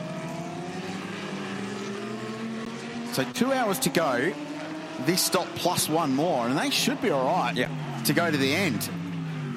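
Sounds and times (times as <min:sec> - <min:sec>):
race car engine droning as it pulls into pit lane: 0:00.0 - 0:09.5
speech: 0:03.2 - 0:04.4, 0:05.0 - 0:09.0.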